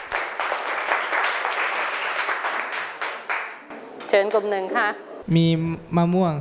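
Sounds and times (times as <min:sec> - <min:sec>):
group of children clapping in a room: 0:00.0 - 0:03.7
speech: 0:04.1 - 0:06.4.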